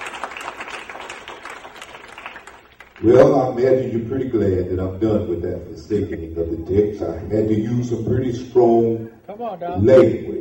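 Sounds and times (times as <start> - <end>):
church congregation clapping hands in praise: 0.0 - 3.6
speech: 3.0 - 10.3.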